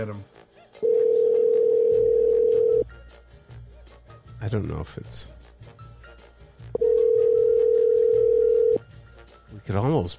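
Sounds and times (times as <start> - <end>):
speech: 0.0 - 0.4, 4.4 - 5.4, 9.7 - 10.1
ringing tone of a call to a mobile phone: 0.8 - 2.8, 6.8 - 8.8.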